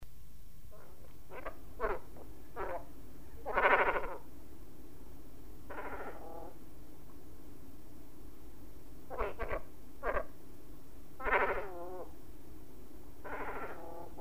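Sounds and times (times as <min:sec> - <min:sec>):
cormorant calling: 0:00.8 - 0:04.2, 0:05.7 - 0:06.6, 0:09.1 - 0:10.3, 0:11.2 - 0:12.1, 0:13.2 - 0:14.1.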